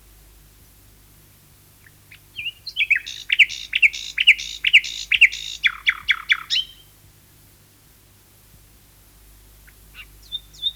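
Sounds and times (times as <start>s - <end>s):
common nightingale song: 1.8s - 6.9s, 9.6s - 10.7s.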